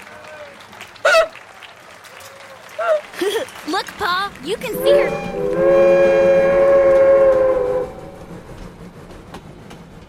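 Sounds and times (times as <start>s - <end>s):
laughter: 2.9s - 4.0s
speech: 3.4s - 6.3s
train brakes squealing: 4.7s - 8.5s
low rumbling: 4.7s - 9.2s.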